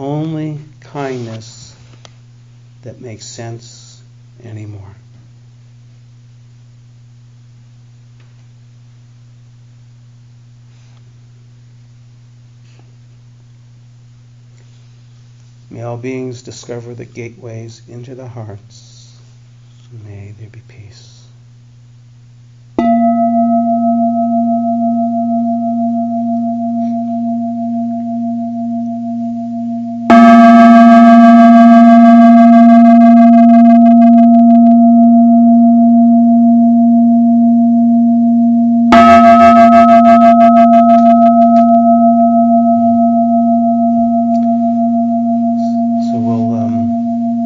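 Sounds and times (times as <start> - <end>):
speech: 0.0 - 1.5, 2.8 - 5.0, 15.7 - 18.9, 19.9 - 21.1
meditation bell struck with deep resonant tone: 22.8 - 47.4.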